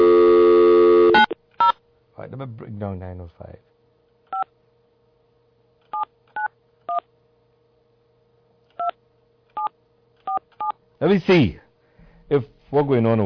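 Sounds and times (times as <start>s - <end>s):
steady low dial-tone hum: 0.0s - 1.4s
speech: 2.4s - 3.7s, 11.0s - 11.6s, 12.3s - 13.2s.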